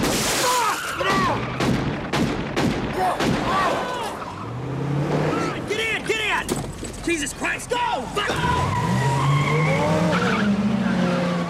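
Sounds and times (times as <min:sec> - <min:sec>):
gunshots fired at car window: 0:00.0 - 0:04.1
vehicle engine roar: 0:03.5 - 0:11.4
car tires skidding and squealing as car swerves: 0:03.6 - 0:07.2, 0:07.9 - 0:11.4.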